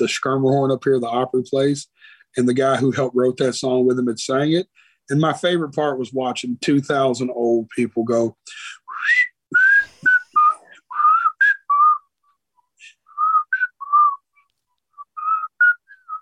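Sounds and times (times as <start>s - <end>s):
speech: 0.0s - 9.3s
person whistling a song's melody: 8.9s - 16.1s.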